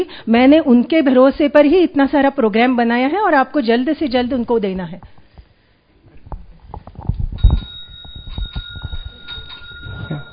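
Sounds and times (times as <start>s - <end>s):
speech: 0.0s - 5.2s
electric doorbell ringing: 7.4s - 10.3s.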